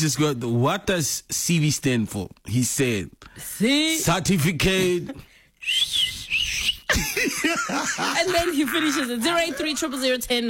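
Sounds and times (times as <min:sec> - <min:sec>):
speech: 0:00.0 - 0:06.1, 0:06.9 - 0:10.4
person whistling a short high wavering tune: 0:05.6 - 0:06.9
laughter: 0:06.9 - 0:10.2.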